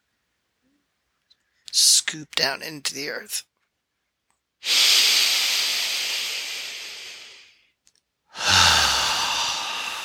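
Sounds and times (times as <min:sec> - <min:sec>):
speech: 0:02.1 - 0:03.5
forceful hissing exhales during a guided breathing exercise: 0:04.6 - 0:07.6, 0:08.4 - 0:10.0.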